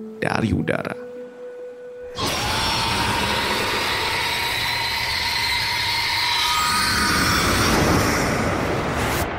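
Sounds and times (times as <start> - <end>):
speech: 0.0 - 1.1
shrill screeching of harpies overhead: 2.1 - 8.7.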